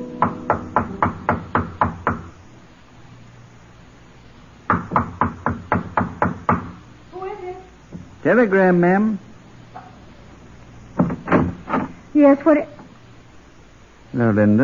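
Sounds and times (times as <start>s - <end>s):
quiet room hiss: 0.0s - 14.6s
sharp knocking on a hotel room door: 0.2s - 2.3s, 4.7s - 6.8s, 11.0s - 11.9s
speech: 8.2s - 9.3s, 12.2s - 12.8s, 14.2s - 14.6s.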